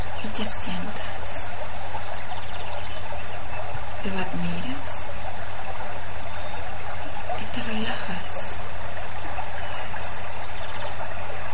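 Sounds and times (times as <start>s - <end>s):
river water flowing: 0.0s - 11.5s
speech: 0.3s - 1.2s, 4.0s - 5.0s, 7.5s - 8.6s.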